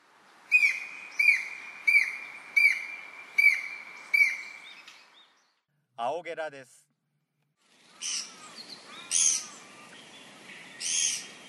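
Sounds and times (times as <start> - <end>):
northern goshawk calling: 0.5 - 4.6, 7.9 - 9.9
speech: 6.0 - 6.9, 8.0 - 8.4.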